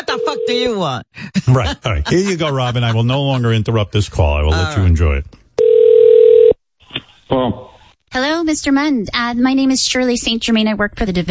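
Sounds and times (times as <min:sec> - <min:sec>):
speech: 0:00.0 - 0:05.4, 0:07.3 - 0:11.2
thin ringback tone over a telephone line: 0:00.1 - 0:00.7, 0:05.6 - 0:06.6
laughter: 0:01.3 - 0:03.9.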